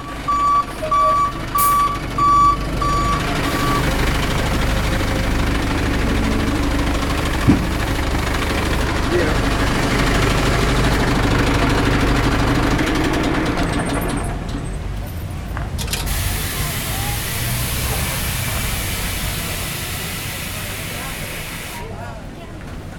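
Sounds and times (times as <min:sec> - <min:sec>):
delivery truck reversing beeps: 0:00.0 - 0:03.9
delivery truck engine rumbling while maneuvering: 0:00.0 - 0:22.9.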